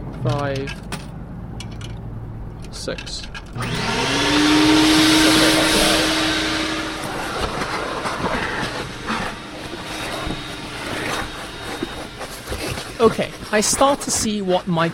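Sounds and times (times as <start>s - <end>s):
speech: 0.2s - 0.9s, 2.8s - 4.8s, 13.0s - 14.9s
vacuum cleaner whirring: 3.6s - 14.5s.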